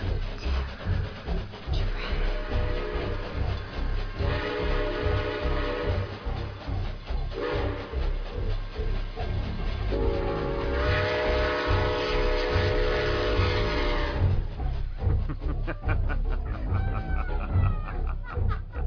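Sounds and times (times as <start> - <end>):
train rumbling along tracks with clatter of wheels: 0.0 - 18.8
train horn blasts: 2.1 - 3.4, 4.2 - 6.3, 7.4 - 8.0, 9.9 - 14.4
laughter: 15.0 - 18.8.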